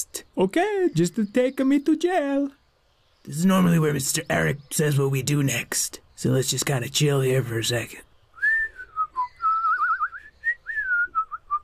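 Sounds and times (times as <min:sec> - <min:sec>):
speech: 0:00.4 - 0:02.6, 0:03.2 - 0:08.1
person whistling a short wavering tune: 0:08.4 - 0:11.6.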